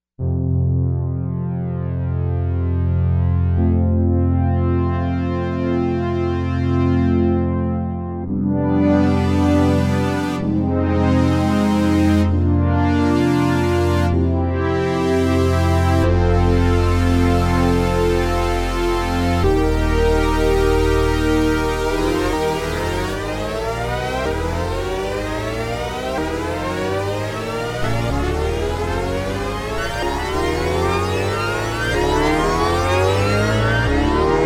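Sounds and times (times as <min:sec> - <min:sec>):
orbit synth pad: 0:01.2 - 0:34.4.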